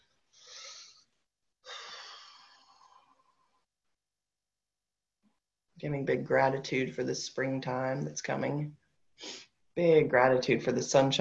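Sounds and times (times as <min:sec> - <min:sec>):
deep breaths into the belly during guided relaxation: 0:00.0 - 0:03.7
speech: 0:05.8 - 0:11.2.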